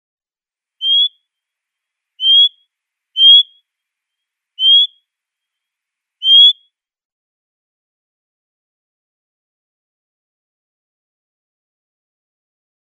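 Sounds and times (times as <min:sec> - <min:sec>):
Northern Anteater-Chat calls: 0:00.8 - 0:01.2, 0:02.2 - 0:03.7, 0:04.6 - 0:05.0, 0:06.2 - 0:06.7.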